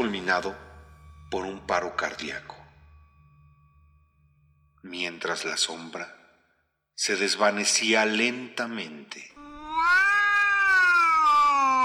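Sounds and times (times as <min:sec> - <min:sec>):
speech: 0:00.0 - 0:00.7, 0:01.3 - 0:02.6, 0:04.8 - 0:06.2, 0:07.0 - 0:10.0
cat meowing: 0:09.4 - 0:11.8.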